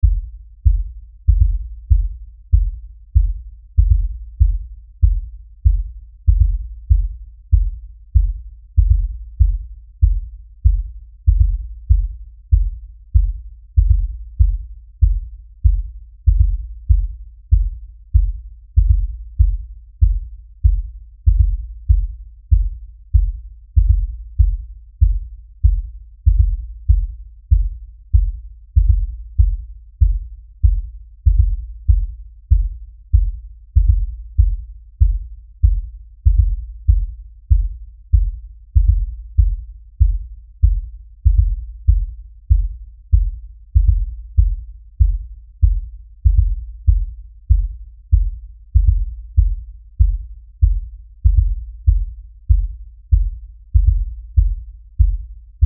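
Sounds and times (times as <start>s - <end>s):
low bass pounding LFE beat rhythm: 0.0s - 55.6s.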